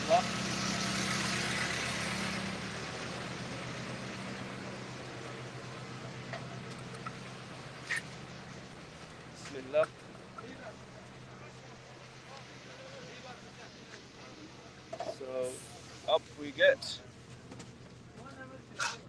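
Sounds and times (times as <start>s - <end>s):
bus engine idling: 0.0s - 19.0s
faint voices of passengers murmuring: 4.8s - 19.0s
speech: 9.6s - 10.0s, 16.4s - 17.0s.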